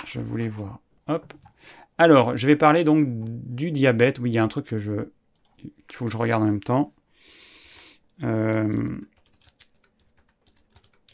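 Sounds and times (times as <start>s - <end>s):
speech: 0.1s - 7.0s, 8.2s - 9.1s
typing on a computer keyboard: 8.4s - 11.1s.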